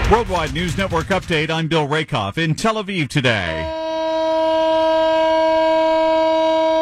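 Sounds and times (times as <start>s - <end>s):
speech: 0.1s - 3.7s
memorial siren wailing in a long steady tone: 3.7s - 6.8s.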